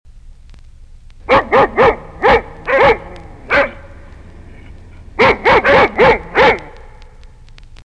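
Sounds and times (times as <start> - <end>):
dog: 1.3 - 3.8, 5.2 - 6.8.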